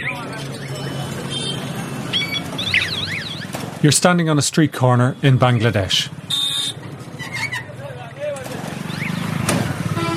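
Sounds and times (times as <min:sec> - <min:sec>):
low rumble of slow-moving street vehicles: 0:00.0 - 0:10.1
speech: 0:03.8 - 0:06.8
short vehicle horn toots: 0:06.3 - 0:06.8, 0:09.9 - 0:10.1.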